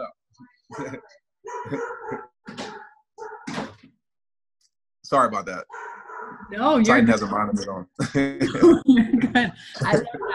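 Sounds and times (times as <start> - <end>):
dog barking: 0.7 - 3.5, 5.7 - 6.5
laughter: 0.8 - 1.0, 6.9 - 10.3
speech: 0.8 - 2.3, 5.1 - 5.8, 6.5 - 10.3.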